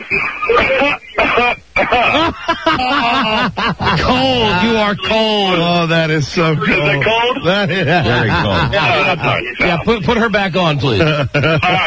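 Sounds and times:
person coughing over a phone line: 0.5 - 2.8
laughter: 0.5 - 5.2, 6.6 - 9.8, 11.0 - 11.8
throaty vocal sounds: 3.4 - 5.1
speech: 3.6 - 11.8.

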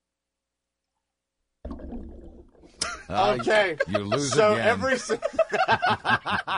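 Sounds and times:
liquid pouring into a glass: 1.6 - 2.8
laughter: 2.8 - 6.5
speech: 3.0 - 6.5.

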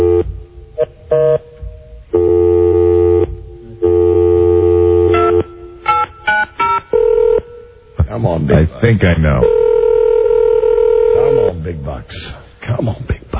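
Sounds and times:
long steady buzzing phone-line tones: 0.0 - 1.5, 2.1 - 7.8, 9.4 - 11.5
speech: 8.5 - 9.6, 12.1 - 13.1.

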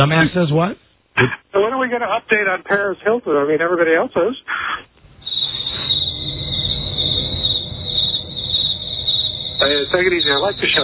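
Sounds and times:
speech: 0.0 - 4.8, 9.8 - 10.8
crickets chirping: 5.0 - 10.8
faint low rumble: 5.0 - 10.8.

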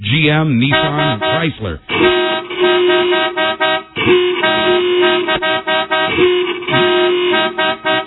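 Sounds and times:
speech: 0.0 - 3.2
busy street and traffic noise: 0.0 - 8.0
car horn blasts: 0.6 - 8.0.

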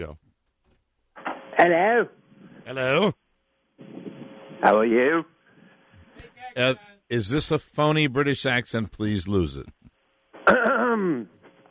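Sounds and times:
speech: 0.0 - 0.2, 1.6 - 3.2, 4.6 - 5.3, 6.2 - 9.8
man clearing his throat: 10.4 - 11.4.

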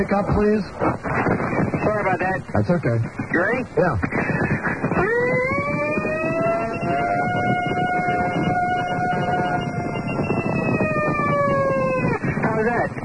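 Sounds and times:
speech: 0.0 - 5.2
caller's voice imitating a siren: 4.9 - 12.2.

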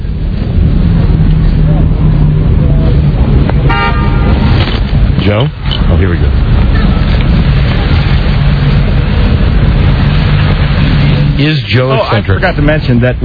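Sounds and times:
busy street traffic with tour buses and cabs: 0.0 - 13.2
short horn toot: 3.7 - 4.5
speech: 5.3 - 6.4, 11.4 - 13.2.

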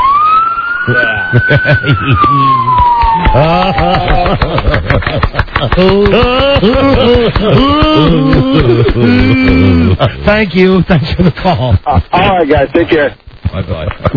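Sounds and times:
police car siren picked up by a phone held out of a window: 0.0 - 4.6
speech: 0.8 - 14.1
laughter: 1.0 - 10.2, 11.0 - 12.3, 13.5 - 14.1.

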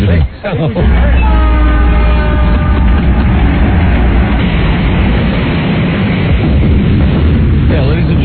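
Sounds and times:
speech: 0.5 - 1.2
train horn blast: 0.8 - 4.6
mock train wreck sound effect rumble: 0.8 - 8.2
train wreck clattering roaring noise: 0.8 - 8.2.

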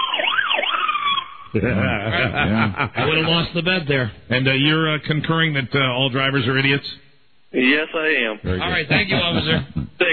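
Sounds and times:
police car siren wailing in a fast yelp pattern: 0.0 - 1.6
speech: 1.5 - 9.8
laughter: 1.6 - 3.6, 8.6 - 10.1.

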